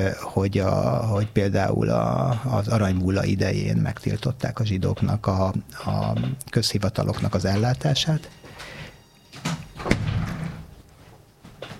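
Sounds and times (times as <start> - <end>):
speech: 0.0 - 8.8
door slamming: 9.4 - 10.7.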